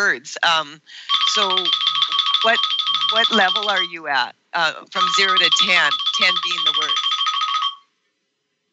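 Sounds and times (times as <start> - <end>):
speech: 0.0 - 7.1
bell ringing with a bright trilling tone: 1.1 - 3.9, 5.0 - 7.8.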